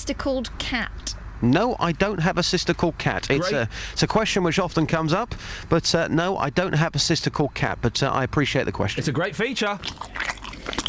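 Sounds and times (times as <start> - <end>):
speech: 0.0 - 10.2
wet chewing and munching: 9.6 - 10.8.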